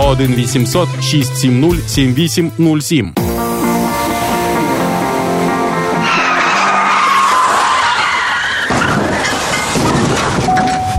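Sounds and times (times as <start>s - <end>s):
speech: 0.1s - 3.6s
car tires screeching in a long skidding squeal in a crash: 4.4s - 10.9s.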